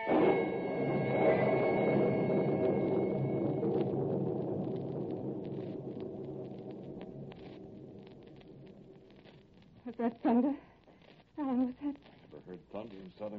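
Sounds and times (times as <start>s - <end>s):
low heavy thunder rumbling as a storm gathers: 0.1s - 10.2s
speech: 10.0s - 10.7s, 12.8s - 13.3s.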